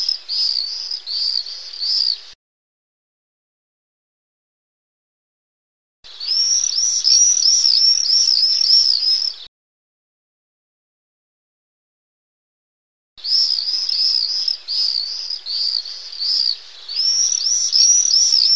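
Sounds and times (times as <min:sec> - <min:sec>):
pair of common swifts calling: 0:00.0 - 0:02.4, 0:06.1 - 0:09.5, 0:13.2 - 0:18.5.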